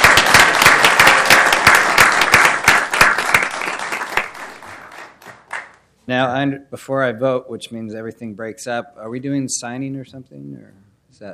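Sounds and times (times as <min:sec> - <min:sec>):
audience applause: 0:00.0 - 0:05.7
speech: 0:06.1 - 0:11.3.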